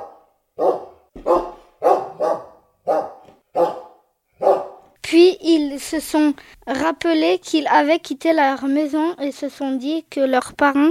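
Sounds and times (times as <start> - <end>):
dog barking: 0.0 - 5.0
speech: 5.8 - 10.8.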